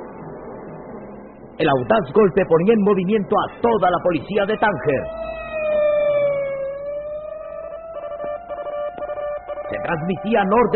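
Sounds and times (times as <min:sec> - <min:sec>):
faint low rumble of traffic: 0:00.0 - 0:10.7
speech: 0:01.6 - 0:05.4, 0:09.9 - 0:10.7
police patrol car siren wailing: 0:03.8 - 0:10.7.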